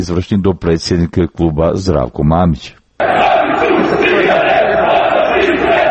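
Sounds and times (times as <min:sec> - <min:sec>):
speech: 0:00.0 - 0:03.3
large crowd of football fans chanting against the club's president: 0:03.0 - 0:05.8.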